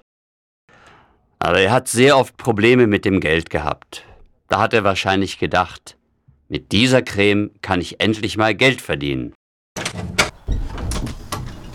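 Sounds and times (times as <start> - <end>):
speech: 1.4 - 10.1
door opening with scraping and rattling: 9.8 - 11.7.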